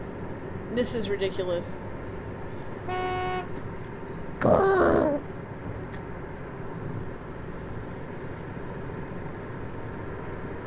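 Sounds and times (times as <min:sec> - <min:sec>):
heavy road traffic rumble: 0:00.0 - 0:10.6
speech: 0:00.7 - 0:01.9, 0:02.9 - 0:03.6, 0:04.4 - 0:05.2
car horns honking: 0:02.9 - 0:03.5.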